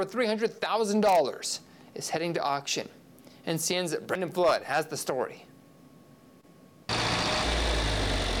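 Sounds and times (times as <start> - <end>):
speech: 0.0 - 5.5
John Deere tractor engines rumbling in Northeast Nebraska: 6.9 - 8.3.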